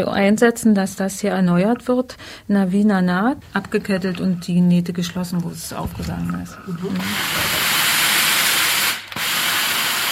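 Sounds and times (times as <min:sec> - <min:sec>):
speech: 0:00.0 - 0:07.6
continuous hiss of steam from a pressing iron: 0:06.9 - 0:10.1.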